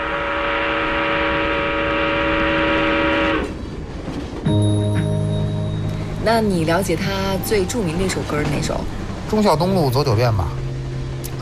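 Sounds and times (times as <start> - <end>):
train horn sound effect: 0.0 - 3.6
rumbling noise: 1.3 - 11.4
speech: 6.3 - 10.6.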